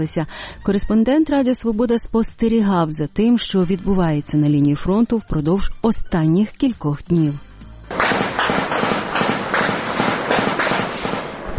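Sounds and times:
speech: 0.0 - 7.5
machine guns firing on the front line near Marinka Donetsk region Ukraine: 7.9 - 11.5.

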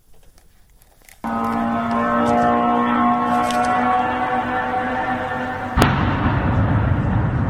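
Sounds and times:
kamikaze drone engine whining: 1.2 - 7.4
explosion with rumbling roar: 5.7 - 7.4.

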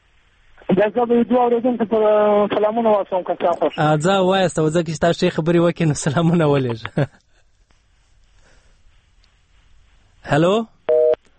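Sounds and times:
speech: 0.7 - 7.3, 10.2 - 10.8
telephone busy signal on a phone line: 10.9 - 11.3.

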